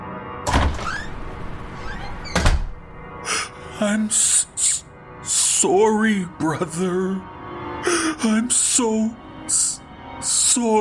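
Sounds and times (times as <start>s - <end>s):
back door bursting open with thud and rattle: 0.5s - 3.2s
speech: 3.8s - 4.6s, 5.6s - 9.7s, 10.6s - 10.8s.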